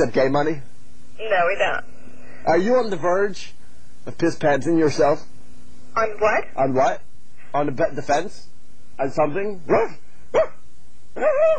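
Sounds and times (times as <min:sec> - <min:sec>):
speech: 0:00.0 - 0:05.3, 0:06.0 - 0:10.5, 0:11.2 - 0:11.5
dog barking: 0:09.7 - 0:10.6
dog howling bark: 0:09.8 - 0:10.6.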